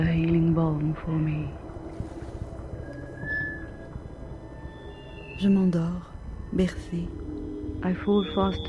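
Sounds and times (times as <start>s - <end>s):
speech: 0.0s - 2.2s, 5.4s - 8.6s
water lapping against a hollow drum boat hull: 0.8s - 4.7s.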